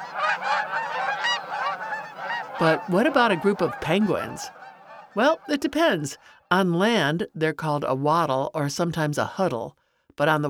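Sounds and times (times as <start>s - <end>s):
gaggle of geese honking: 0.0s - 6.4s
speech: 2.6s - 4.6s, 5.2s - 10.4s.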